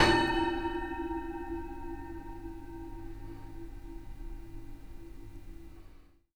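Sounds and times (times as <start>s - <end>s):
grille resonance: 0.0s - 2.7s.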